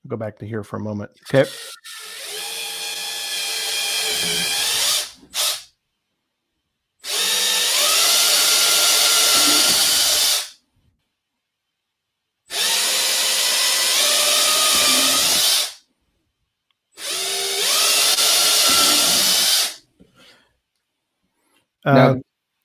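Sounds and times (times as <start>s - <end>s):
speech: 0.1s - 2.0s, 21.8s - 22.2s
long power drill boring holes: 1.3s - 5.7s, 7.0s - 10.6s, 12.5s - 15.8s, 17.0s - 19.8s.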